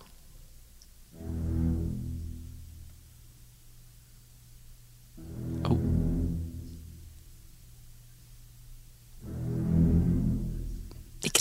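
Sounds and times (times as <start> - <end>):
ominous low orchestral film theme music with deep brass and strings: 1.1 - 3.4, 5.1 - 7.9, 8.5 - 11.4.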